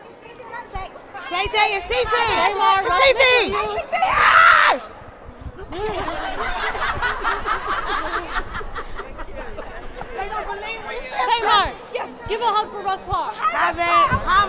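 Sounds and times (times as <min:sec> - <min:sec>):
dense crowd chattering and calling out at a red carpet: 0:00.0 - 0:14.4
shrieks and laughter from a crowd: 0:01.1 - 0:14.4
speech: 0:01.3 - 0:04.9, 0:05.8 - 0:06.6, 0:10.5 - 0:14.4
loud high scream at a red carpet: 0:03.5 - 0:04.9.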